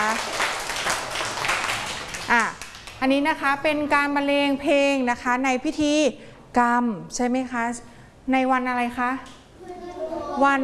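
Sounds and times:
children clapping after a musical performance: 0.0 - 3.0
speech: 3.0 - 9.4, 10.4 - 10.6.

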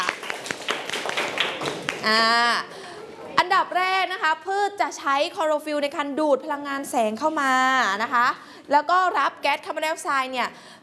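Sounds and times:
class of students clapping in a classroom: 0.0 - 2.2
speech: 2.0 - 2.7, 3.6 - 10.8.

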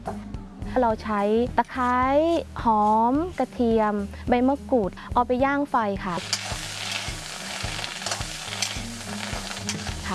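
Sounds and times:
speech: 0.8 - 6.5
spatula scraping a pan while stir-frying pounded grilled Spanish mackerel floss without oil: 6.2 - 10.1.

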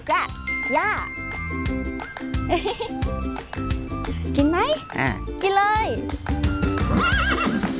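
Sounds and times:
bright chiming and jingling tones: 0.0 - 3.0
speech: 0.0 - 3.7, 4.4 - 7.2
horse neighing: 6.9 - 7.6.

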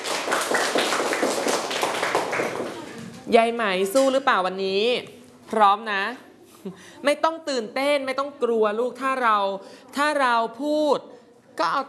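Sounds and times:
group clapping: 0.0 - 3.3
speech: 3.3 - 11.8.

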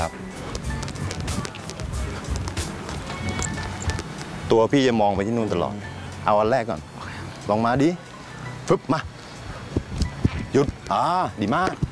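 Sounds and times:
running crossover footsteps: 0.5 - 4.4
speech: 4.5 - 6.9, 7.5 - 8.0, 8.7 - 9.1, 10.6 - 11.8.

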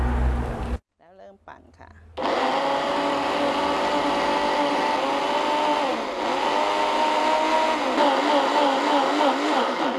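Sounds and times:
kitchen blender whirring blending shredded pandan leaves with water: 2.2 - 9.9.

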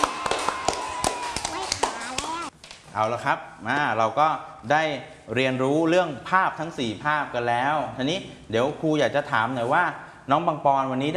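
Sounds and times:
scattered hand claps: 0.0 - 2.5
speech: 3.0 - 11.1.

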